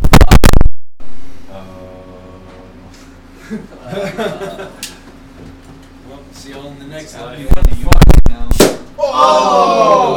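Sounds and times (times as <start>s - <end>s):
balloon popping with a loud bang: 0.0s - 0.8s, 7.6s - 8.9s
laughter: 3.4s - 5.1s
speech: 3.5s - 4.9s, 6.4s - 10.1s.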